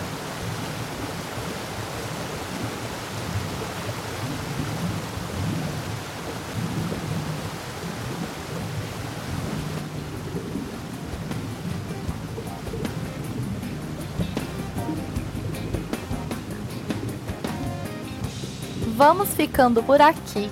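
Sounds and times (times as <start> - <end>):
steady heavy rain falling in a forest: 0.0 - 18.9
speech: 19.0 - 20.5.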